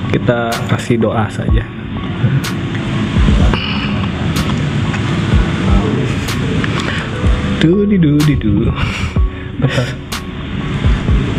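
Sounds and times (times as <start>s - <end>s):
speech: 0.1s - 2.6s, 7.6s - 9.0s, 9.6s - 10.0s
airplane flying: 1.4s - 11.3s
low thumps: 1.5s - 3.8s, 5.3s - 11.3s.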